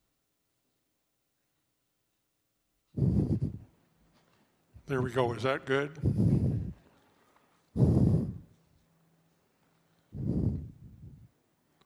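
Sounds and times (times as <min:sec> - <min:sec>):
heavy breathing: 0:03.0 - 0:04.4, 0:06.0 - 0:07.0, 0:07.6 - 0:08.7, 0:10.0 - 0:11.4
speech: 0:04.9 - 0:06.4.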